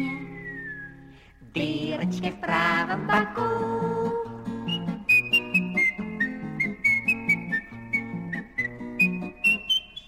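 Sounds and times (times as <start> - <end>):
clear high whistled melody of short notes: 0.0 - 1.1, 4.6 - 10.0
speech: 1.5 - 3.9
bouncy musical accompaniment: 1.6 - 10.0.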